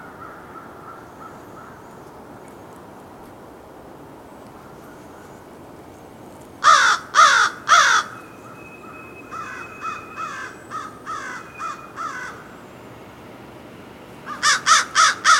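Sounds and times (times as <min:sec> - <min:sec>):
American crow cawing: 0:00.0 - 0:01.8, 0:06.6 - 0:08.2, 0:08.9 - 0:12.5, 0:14.3 - 0:15.3.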